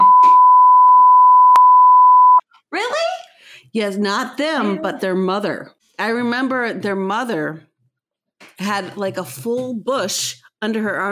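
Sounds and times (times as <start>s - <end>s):
loud steady electronic censor beep: 0.0s - 2.4s
speech: 3.7s - 7.7s, 8.6s - 11.1s.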